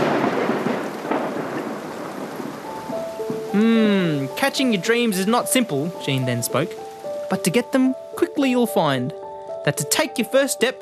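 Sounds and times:
low rolling rumble of thunder: 0:00.0 - 0:03.5
heavy rain pouring steadily: 0:00.0 - 0:10.7
speech: 0:03.6 - 0:10.7.

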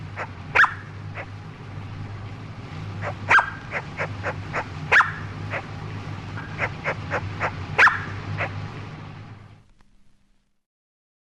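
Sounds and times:
female superb lyrebird imitating a dog's bark: 0:00.0 - 0:01.4, 0:03.0 - 0:05.8, 0:06.4 - 0:08.6.

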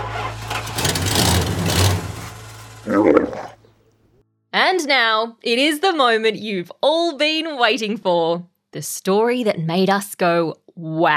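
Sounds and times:
grinding mechanical noise: 0:00.0 - 0:03.7
big truck engine rumbling: 0:00.0 - 0:03.8
speech: 0:03.0 - 0:03.2, 0:04.8 - 0:11.1.

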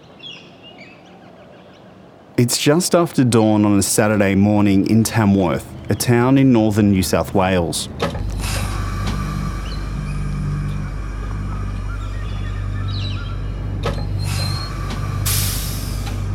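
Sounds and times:
speech: 0:02.4 - 0:08.2
freight train diesel engine droning as it pulls away from a station: 0:02.6 - 0:16.3
short metallic squeals of a freight train: 0:08.1 - 0:16.3.

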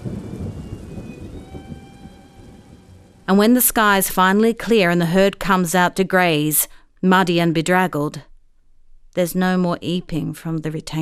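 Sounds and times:
hard rain pouring at night: 0:00.0 - 0:04.0
low rumbling: 0:00.0 - 0:04.7
speech: 0:03.3 - 0:08.3, 0:09.2 - 0:11.0.

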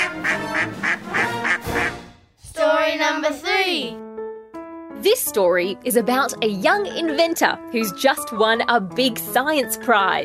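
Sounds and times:
duck quacking: 0:00.0 - 0:02.0
speech: 0:03.0 - 0:04.0, 0:05.0 - 0:10.2.

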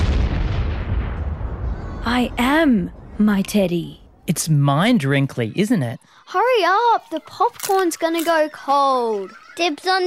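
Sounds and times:
heavy booming explosion blast with deep rumbling low end: 0:00.0 - 0:04.3
speech: 0:02.0 - 0:10.0.

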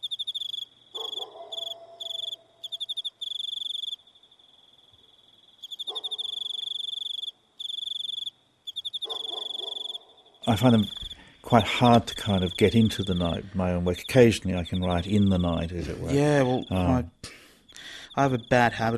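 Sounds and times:
crickets trilling at night: 0:00.0 - 0:17.0, 0:17.6 - 0:18.9
speech: 0:10.5 - 0:17.2, 0:18.2 - 0:18.9
faint hum: 0:10.5 - 0:18.9.

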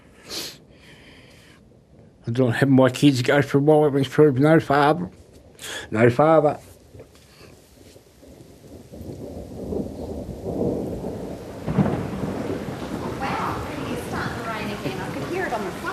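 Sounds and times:
steady rain pouring down in Hobart: 0:00.0 - 0:15.9
low rumbles of thunder: 0:01.7 - 0:15.9
speech: 0:02.3 - 0:05.2, 0:05.9 - 0:06.7.

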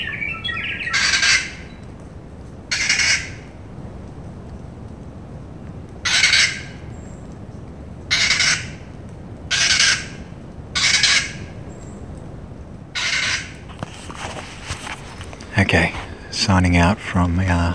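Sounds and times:
kaka parrots squawking in trees: 0:00.0 - 0:01.6, 0:02.7 - 0:03.4, 0:06.0 - 0:06.7, 0:08.1 - 0:08.7, 0:09.5 - 0:10.1, 0:10.8 - 0:11.4, 0:13.0 - 0:13.6
soft hiss: 0:00.0 - 0:17.7
speech: 0:16.5 - 0:17.7.

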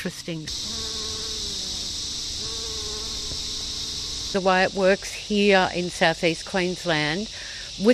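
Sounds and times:
speech: 0:00.0 - 0:01.0, 0:04.3 - 0:07.9
bright hissing outdoor background: 0:00.0 - 0:07.9
bees buzzing around basil flowers: 0:00.5 - 0:07.9.

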